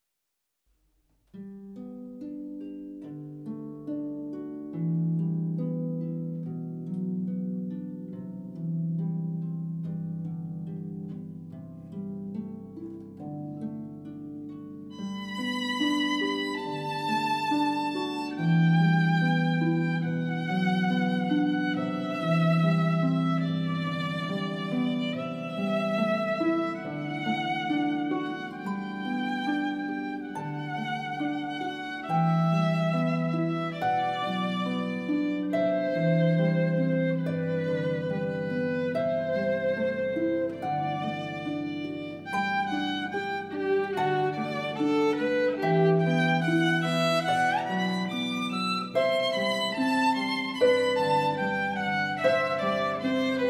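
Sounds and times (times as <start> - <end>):
harp: 1.3 - 53.4
violin: 14.8 - 53.4.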